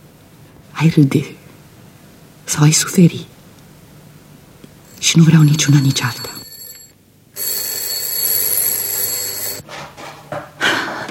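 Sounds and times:
speech: 0:00.8 - 0:01.4, 0:02.5 - 0:03.3, 0:05.0 - 0:06.3
electric doorbell ringing: 0:04.9 - 0:09.6.

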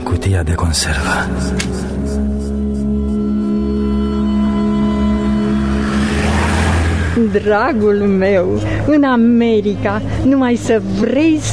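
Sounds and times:
speech: 0:00.1 - 0:02.2, 0:07.2 - 0:11.5
taxi engine droning in heavy city traffic: 0:03.0 - 0:11.4
brighter rushing noise of heavy traffic: 0:04.8 - 0:09.0.

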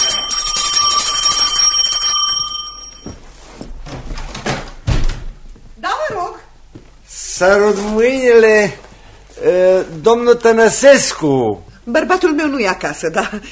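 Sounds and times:
small bell on the gate of a house ringing: 0:00.0 - 0:03.2
speech: 0:07.4 - 0:08.8, 0:09.4 - 0:13.5.

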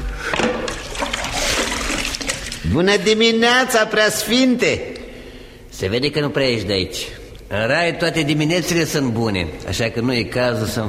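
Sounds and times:
water splashing and trickling as someone washes their face from a wooden jug: 0:00.7 - 0:02.7
speech: 0:02.7 - 0:04.9, 0:05.8 - 0:10.8.

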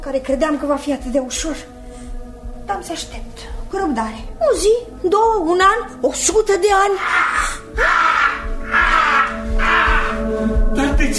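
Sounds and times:
speech: 0:00.0 - 0:01.8, 0:02.7 - 0:08.1, 0:10.4 - 0:11.1
raven cawing: 0:06.9 - 0:10.4.

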